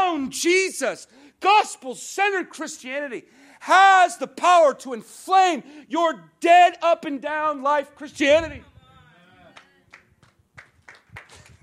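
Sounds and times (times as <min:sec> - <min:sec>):
speech: 0:00.3 - 0:08.7
quiet scattered hand claps from a small audience: 0:09.5 - 0:11.6.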